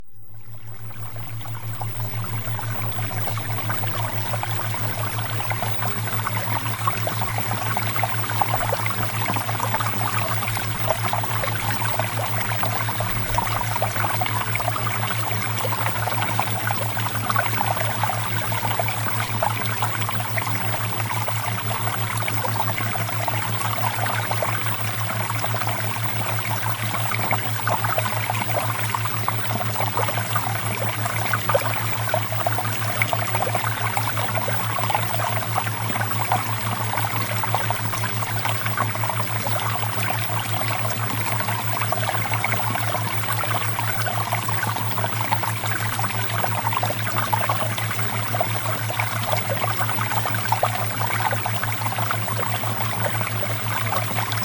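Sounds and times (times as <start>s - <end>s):
water with theta waves: 0.0s - 54.4s.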